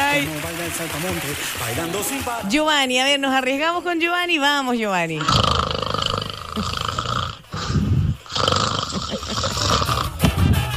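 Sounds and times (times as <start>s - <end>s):
speech: 0.2s - 5.8s
person snoring: 5.2s - 10.3s.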